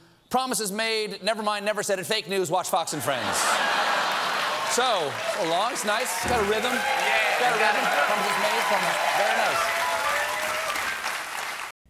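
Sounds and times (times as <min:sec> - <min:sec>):
speech: 0:00.3 - 0:04.1, 0:04.8 - 0:09.8
laughter: 0:03.0 - 0:05.0
large studio audience applauding: 0:03.6 - 0:11.8.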